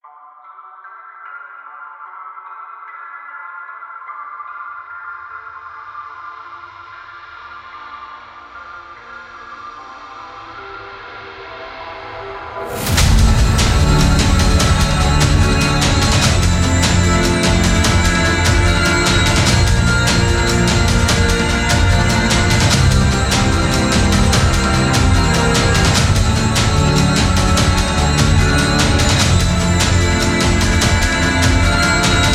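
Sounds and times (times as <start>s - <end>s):
extended trailer theme music: 11.2s - 32.3s.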